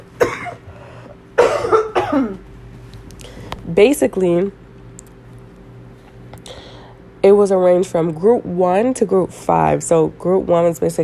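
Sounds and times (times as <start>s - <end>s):
harsh coughs: 0.2s - 0.7s, 1.4s - 2.4s
speech: 3.8s - 4.6s, 7.2s - 11.0s.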